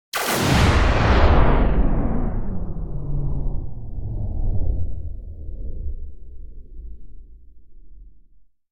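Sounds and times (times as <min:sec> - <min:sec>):
sci-fi weapon blast whoosh: 0:00.1 - 0:04.0.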